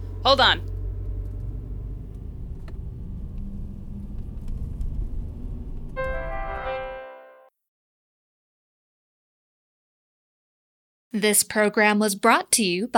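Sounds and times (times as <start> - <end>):
car engine rumbling and pulling away: 0.0 - 6.0
speech: 0.2 - 0.7, 11.2 - 12.9.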